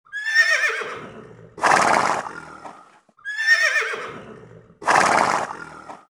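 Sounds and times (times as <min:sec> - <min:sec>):
horse neighing: 0:00.1 - 0:06.0
horse snorting: 0:00.6 - 0:03.1, 0:03.7 - 0:06.0.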